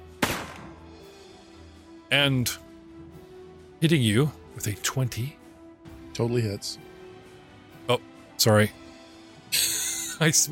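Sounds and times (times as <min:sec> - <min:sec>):
gunshot sound effect with echo: 0:00.2 - 0:00.8
speech: 0:02.1 - 0:02.6, 0:03.8 - 0:05.4, 0:06.2 - 0:06.9, 0:07.9 - 0:08.8, 0:09.5 - 0:10.5
laughter: 0:09.5 - 0:10.5.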